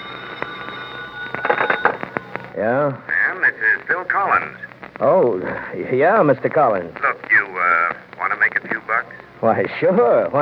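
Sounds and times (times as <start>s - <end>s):
shrill electronic telephone ring in a room: 0.0s - 2.6s
speech: 2.6s - 7.3s, 8.7s - 10.4s.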